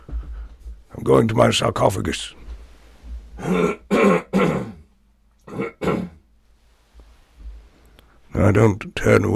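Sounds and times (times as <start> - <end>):
speech: 1.0 - 2.4, 8.5 - 9.3
person coughing harshly: 3.4 - 6.2.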